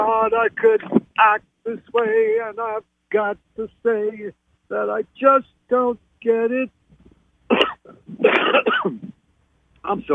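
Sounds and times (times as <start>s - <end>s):
speech: 0.3s - 6.8s, 7.5s - 9.2s, 9.8s - 10.1s
person coughing and throat-clearing: 7.5s - 9.2s.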